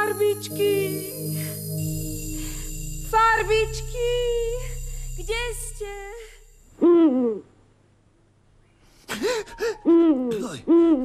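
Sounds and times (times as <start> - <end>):
speech: 0.2 - 2.0, 3.1 - 4.4
owl hooting: 9.4 - 11.0.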